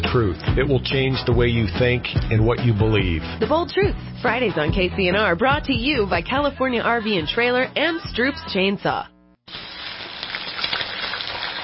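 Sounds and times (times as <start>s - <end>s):
speech: 0.1s - 9.6s
turkey deep-frying in hot cooking oil: 9.5s - 11.6s.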